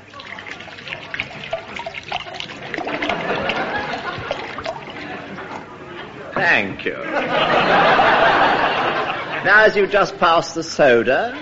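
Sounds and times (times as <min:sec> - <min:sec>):
brandy poured from a bottle into a glass: 0:00.0 - 0:05.7
laughter: 0:02.7 - 0:06.2, 0:07.0 - 0:09.9
speech: 0:06.5 - 0:08.1, 0:09.4 - 0:11.4.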